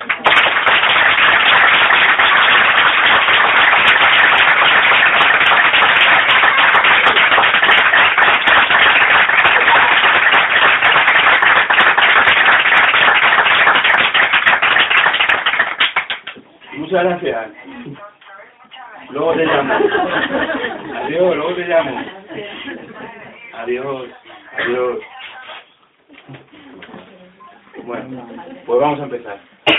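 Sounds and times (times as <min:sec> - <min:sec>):
audience applause in a bookshop: 0:00.0 - 0:16.4
speech: 0:17.0 - 0:17.6, 0:19.1 - 0:22.2, 0:23.6 - 0:25.1, 0:28.1 - 0:29.6
laughter: 0:19.4 - 0:23.4.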